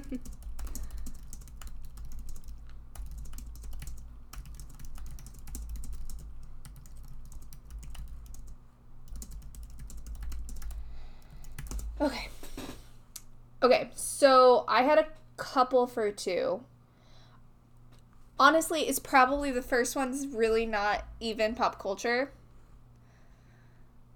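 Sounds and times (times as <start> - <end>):
rapid typing on a computer keyboard: 0.0 - 12.0
low hum: 0.0 - 24.1
speech: 0.1 - 0.4, 12.0 - 12.4, 13.6 - 16.7, 18.4 - 22.4.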